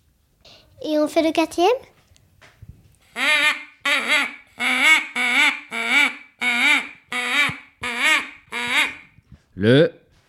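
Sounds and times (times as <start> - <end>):
speech: 0.4 - 1.9, 9.6 - 10.0
duck quacking: 3.1 - 9.1.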